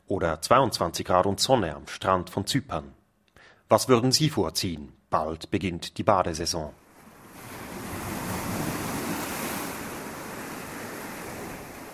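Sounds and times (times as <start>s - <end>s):
speech: 0.1s - 3.0s, 3.7s - 6.8s
sea surf washing against the shore at an old harbour pier: 6.8s - 11.9s.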